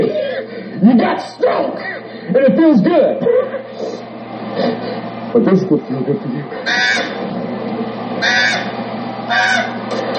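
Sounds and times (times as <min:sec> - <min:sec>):
laughter: 0:00.0 - 0:00.8, 0:03.1 - 0:05.2
speech: 0:00.8 - 0:03.9, 0:05.3 - 0:06.8
goose honking: 0:06.6 - 0:07.3, 0:08.2 - 0:10.0.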